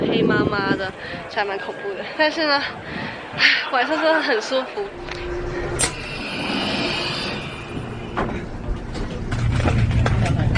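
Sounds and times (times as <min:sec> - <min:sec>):
moving train carriage rumble: 0:00.0 - 0:10.5
speech: 0:00.1 - 0:05.4
deep droning hum: 0:04.9 - 0:10.5.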